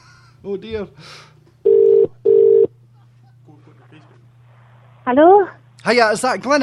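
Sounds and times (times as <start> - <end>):
low hum: 0.0 - 6.6
speech: 0.4 - 1.3, 5.0 - 6.6
telephone ringing tone: 1.6 - 2.7.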